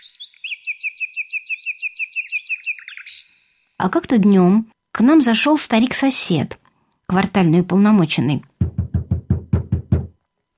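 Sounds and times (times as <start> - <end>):
nightingale singing: 0.0 - 3.5
speech: 3.8 - 8.5.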